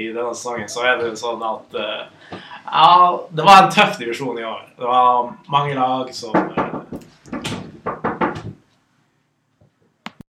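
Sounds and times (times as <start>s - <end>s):
speech: 0.0s - 6.7s
loud heavy knocking on a door: 6.3s - 8.6s.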